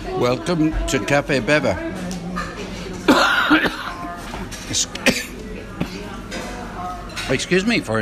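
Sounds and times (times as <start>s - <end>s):
speech: 0.2s - 1.9s, 7.3s - 8.0s
person coughing after food went down wrong: 3.0s - 4.0s, 5.0s - 6.0s.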